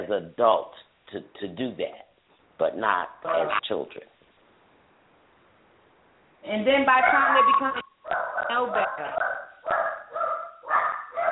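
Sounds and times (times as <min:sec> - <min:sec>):
speech: 0:00.1 - 0:04.1, 0:06.4 - 0:09.3
dogs barking loudly: 0:03.2 - 0:03.6, 0:06.9 - 0:11.3.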